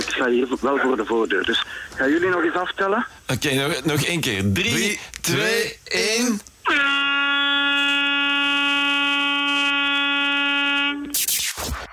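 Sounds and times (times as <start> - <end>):
speech: 0.2 - 7.0
long loud brassy air horn blast: 6.6 - 11.4
burst of noise: 11.1 - 11.9.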